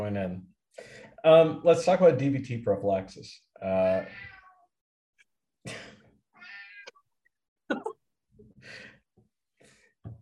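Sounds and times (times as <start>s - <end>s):
speech: 0.0s - 4.3s
cat meowing: 4.0s - 4.7s, 6.4s - 6.9s.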